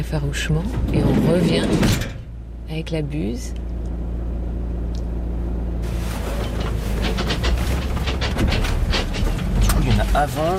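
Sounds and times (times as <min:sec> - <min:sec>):
speech: 0:00.0 - 0:03.7, 0:09.8 - 0:10.5
low vehicle rumble: 0:00.0 - 0:10.5
broadband roar and rattle: 0:00.4 - 0:02.4, 0:05.8 - 0:10.5.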